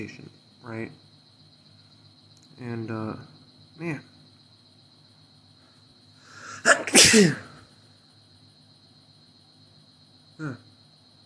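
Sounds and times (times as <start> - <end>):
speech: 0.0 - 1.1, 2.6 - 4.1, 6.7 - 7.5, 10.4 - 10.7
loud human sneeze with sharp inhale: 6.3 - 7.6.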